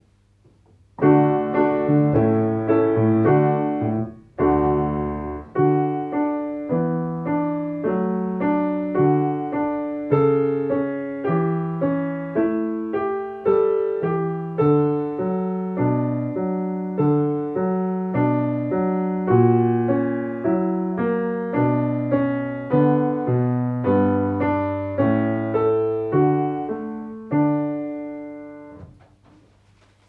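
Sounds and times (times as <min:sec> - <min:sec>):
piano piece: 0:00.2 - 0:29.2.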